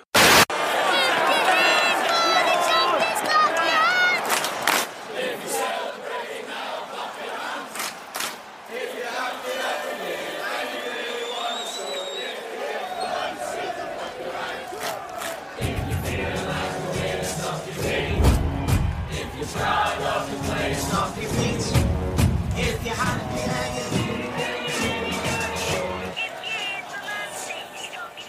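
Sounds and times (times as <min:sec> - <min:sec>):
large football crowd singing a chant to a children's song: 0:00.8 - 0:28.2
rhythmic hand clapping: 0:04.2 - 0:04.9, 0:07.7 - 0:08.5, 0:14.6 - 0:26.8.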